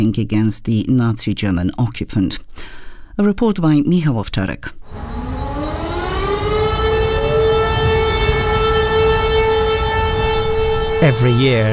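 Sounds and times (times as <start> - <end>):
speech: 0.0 - 5.1, 11.0 - 11.7
civil defense sirens sounding to mark W hour: 4.8 - 11.7
low rumbling background: 4.8 - 11.7.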